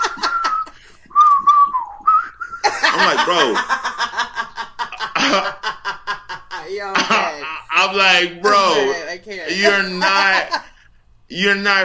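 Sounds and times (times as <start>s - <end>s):
laughter: 0.0s - 10.9s
man whistling a song tune: 0.1s - 2.6s
speech: 3.0s - 3.9s, 5.3s - 5.6s, 6.7s - 10.6s, 11.3s - 11.8s.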